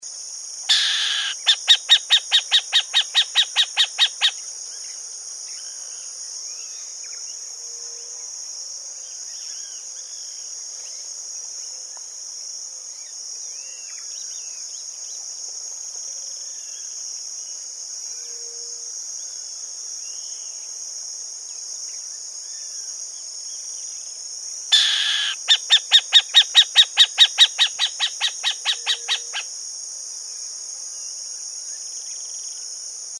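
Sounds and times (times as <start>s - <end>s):
Athene cuniculiaria burrowing owl calling: 0.7s - 4.4s, 24.7s - 29.5s.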